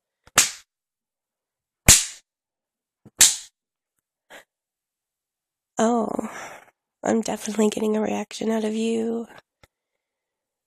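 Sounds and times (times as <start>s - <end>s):
hand slapping skin: 0.3s - 0.7s, 1.8s - 2.2s, 3.1s - 3.5s
speech: 5.8s - 6.4s, 7.0s - 9.4s.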